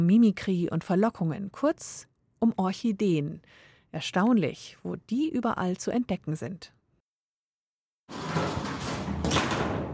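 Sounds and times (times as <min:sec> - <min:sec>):
speech: 0:00.0 - 0:06.8
door of a tropical orchid show house opening: 0:08.1 - 0:09.9.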